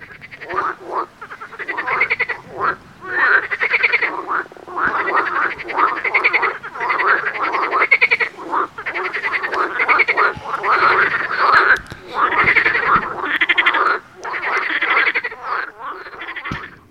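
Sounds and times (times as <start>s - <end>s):
dense chorus of frogs croaking: 0.0s - 16.8s.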